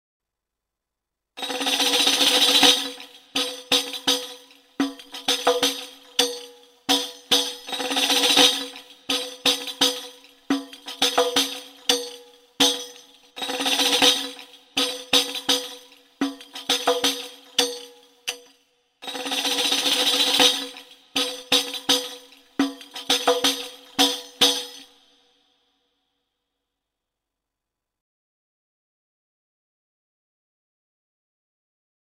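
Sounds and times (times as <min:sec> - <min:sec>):
tambourine: 0:01.4 - 0:25.8.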